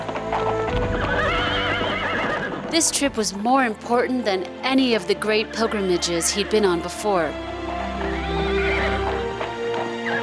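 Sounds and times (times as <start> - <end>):
horse hooves clip-clopping: 0.0 - 10.2
ridden horse whinnying: 0.8 - 2.9, 5.5 - 7.0, 7.8 - 10.2
speech: 2.7 - 7.5.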